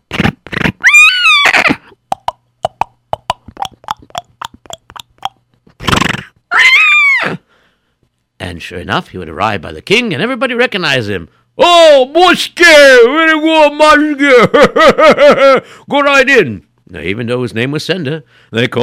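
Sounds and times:
horse whinnying: 0:00.2 - 0:01.9, 0:05.8 - 0:07.4
speech: 0:08.6 - 0:18.8.

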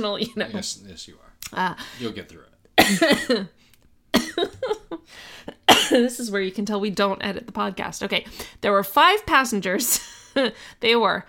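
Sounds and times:
speech: 0:00.0 - 0:03.7, 0:04.4 - 0:11.2
person coughing: 0:02.8 - 0:03.5, 0:04.2 - 0:04.8, 0:05.6 - 0:06.2.

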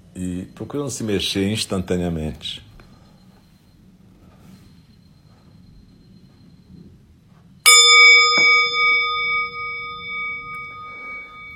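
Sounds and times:
speech: 0:00.2 - 0:02.7
meditation bell being struck: 0:07.6 - 0:11.5.

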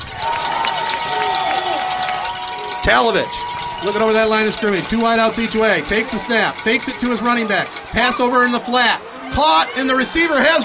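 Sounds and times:
big stadium crowd cheering: 0:00.0 - 0:10.6
cowbells clanking: 0:00.0 - 0:10.6
speech: 0:02.9 - 0:10.6.

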